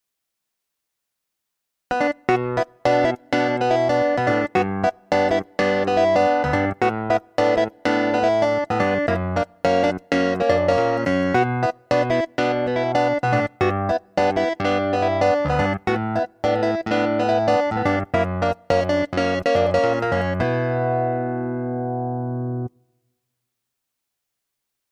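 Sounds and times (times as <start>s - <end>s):
clavinet: 1.9s - 21.6s.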